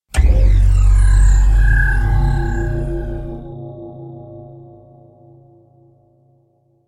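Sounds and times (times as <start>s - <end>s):
portal opening: 0.1s - 3.6s.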